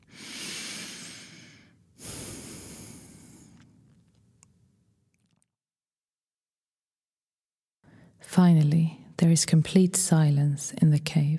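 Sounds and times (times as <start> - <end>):
deep breath in and out: 0.0 - 3.7, 7.8 - 8.2
speech: 8.4 - 11.3.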